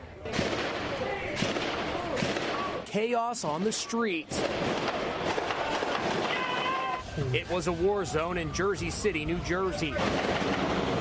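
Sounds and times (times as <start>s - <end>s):
heavy gunfire during a police operation in Jersey City, New Jersey: 0.3s - 2.8s, 4.3s - 6.8s, 9.9s - 11.0s
speech: 2.9s - 5.0s, 7.2s - 11.0s.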